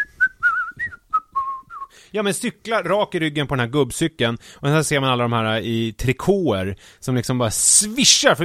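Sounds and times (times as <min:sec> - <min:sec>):
person whistling a short bright tune: 0:00.0 - 0:01.9
speech: 0:02.1 - 0:08.4.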